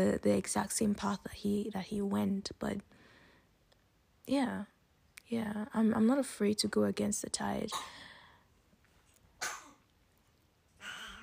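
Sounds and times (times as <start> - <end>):
speech: 0.0 - 3.0, 4.3 - 4.7, 5.3 - 8.1
faint hiss: 0.0 - 11.2
short breathy coughs: 7.7 - 8.3, 9.4 - 9.8.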